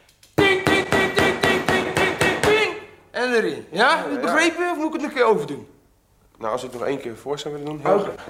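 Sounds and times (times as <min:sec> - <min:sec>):
hammer driving a nail into wood: 0:00.4 - 0:02.7
speech: 0:03.2 - 0:05.8, 0:06.4 - 0:08.2.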